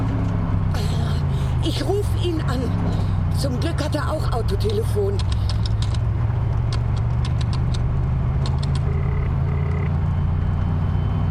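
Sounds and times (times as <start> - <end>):
car driving with engine running: 0.0 - 11.2
speech: 1.7 - 5.4
light clicks and rattles: 4.5 - 8.8.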